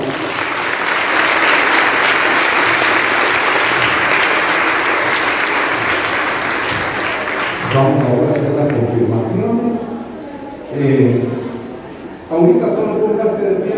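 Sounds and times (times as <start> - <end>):
applause from a large audience: 0.0 - 8.9
speech: 7.8 - 9.8, 10.7 - 11.4, 12.4 - 12.8.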